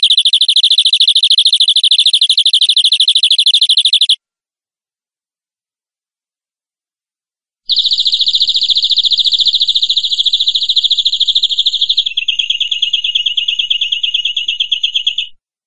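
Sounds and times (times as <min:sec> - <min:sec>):
canary song in rapid even trills: 0:00.0 - 0:04.2, 0:07.7 - 0:15.4.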